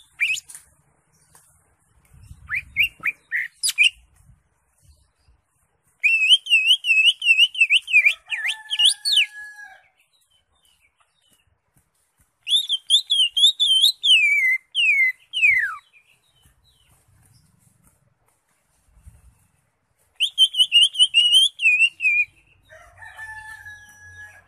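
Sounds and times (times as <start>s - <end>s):
Greater Green Leafbird song of whistles and trills: 0.0s - 0.6s, 2.1s - 4.1s, 6.0s - 9.4s, 12.4s - 17.5s, 19.0s - 22.4s.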